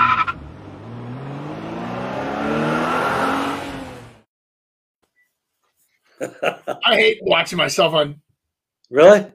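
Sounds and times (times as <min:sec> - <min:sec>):
car engine revving up and accelerating: 0:00.0 - 0:04.3
laughter: 0:06.2 - 0:06.8
speech: 0:06.2 - 0:08.2, 0:08.9 - 0:09.3.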